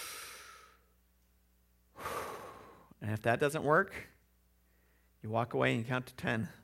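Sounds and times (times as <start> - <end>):
deep breaths drawn in as a calming exercise: 0.0 - 0.9, 1.9 - 3.0, 4.6 - 5.2
speech: 3.0 - 4.2, 5.2 - 6.6.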